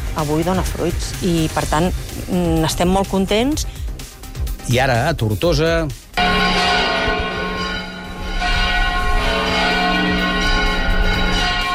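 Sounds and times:
speech: 0:00.2 - 0:03.8, 0:04.7 - 0:06.0
church bells ringing full peal: 0:06.2 - 0:11.7.

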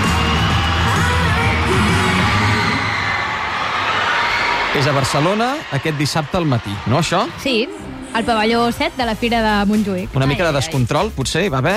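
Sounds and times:
large crowd of fans screaming in a pavilion of the Fira de Montjuïc in Barcelona: 0:00.0 - 0:08.0
speech: 0:04.8 - 0:11.7.

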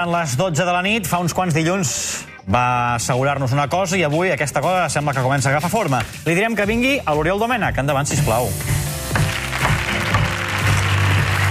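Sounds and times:
speech: 0:00.0 - 0:08.8
upbeat band music: 0:03.8 - 0:11.4
studio audience applauding: 0:09.1 - 0:11.4.

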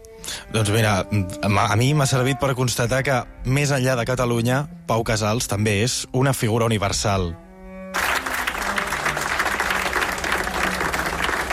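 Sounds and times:
speech: 0:00.5 - 0:07.4
large audience applauding: 0:08.0 - 0:11.5.

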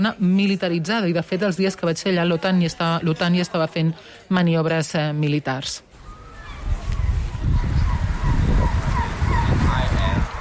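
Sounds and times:
speech: 0:00.0 - 0:05.9
steady low wind in an Arctic harbour in northern Norway: 0:05.9 - 0:10.4
gulls crying over a harbour: 0:06.0 - 0:10.4
boat motors churning in a harbour: 0:07.6 - 0:10.4.

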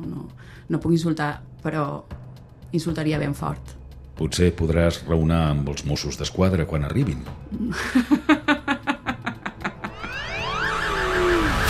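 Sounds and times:
speech: 0:00.3 - 0:08.5
laughter: 0:07.6 - 0:10.4
alarm with sweeping warbling siren tone: 0:09.9 - 0:11.6
alarm with loud pulsing beeps: 0:10.0 - 0:11.6.

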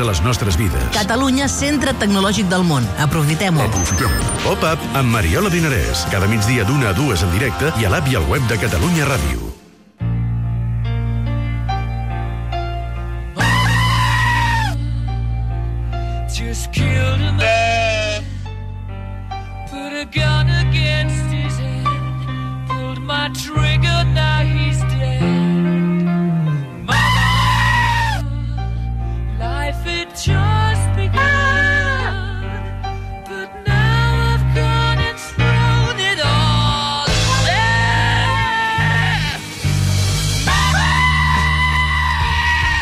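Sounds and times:
speech: 0:00.0 - 0:09.6
rhythmic musical backing of a song remix: 0:00.0 - 0:42.8
goat screaming: 0:13.4 - 0:14.8, 0:17.4 - 0:18.2, 0:26.9 - 0:28.2, 0:37.5 - 0:39.5, 0:40.5 - 0:42.8.

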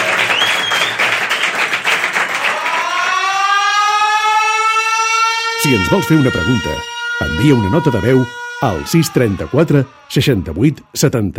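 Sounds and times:
loud dense audience applause: 0:00.0 - 0:03.5
sustained siren-like electronic tone: 0:02.5 - 0:11.3
speech: 0:05.6 - 0:11.3.

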